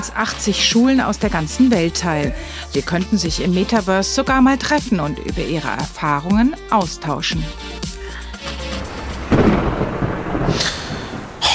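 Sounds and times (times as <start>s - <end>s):
speech: 0.0s - 7.9s
thunder rumbling: 8.4s - 11.5s.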